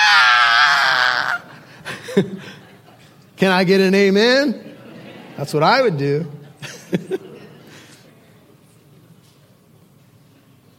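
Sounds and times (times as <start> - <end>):
person imitating a high-pitched scream of fright: 0.0 - 1.6
speech: 2.2 - 2.6, 3.4 - 4.7, 5.4 - 7.3.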